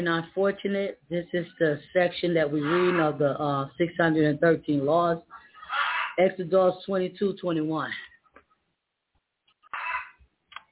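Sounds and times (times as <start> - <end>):
speech: 0.0 - 8.1
chicken clucking and squawking: 5.4 - 6.2, 9.7 - 10.2.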